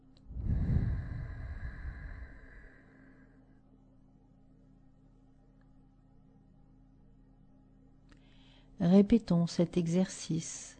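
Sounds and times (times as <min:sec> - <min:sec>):
faint steady hum: 0:00.0 - 0:10.7
slow gentle exhale during a yogic breathing exercise: 0:00.3 - 0:03.4
speech: 0:08.8 - 0:10.7.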